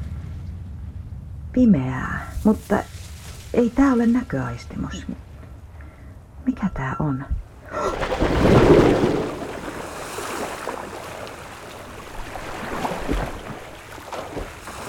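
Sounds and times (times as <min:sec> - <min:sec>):
wind: 0:00.0 - 0:14.8
speech: 0:01.5 - 0:05.3, 0:06.5 - 0:09.2
broad steady wash of open water: 0:02.3 - 0:06.0, 0:07.5 - 0:14.8.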